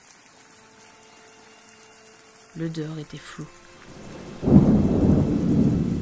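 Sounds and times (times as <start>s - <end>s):
heavy rain in a thunderstorm: 0.0s - 6.0s
speech: 2.6s - 4.5s
deep loud thunder rumbling: 3.8s - 6.0s.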